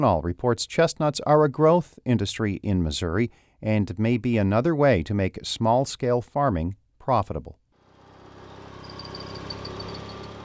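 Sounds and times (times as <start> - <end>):
speech: 0.0 - 7.6
vehicle engine humming while driving around a farm in central Missouri: 7.8 - 10.4
faint high rhythmic insect-like chirps: 8.8 - 10.4.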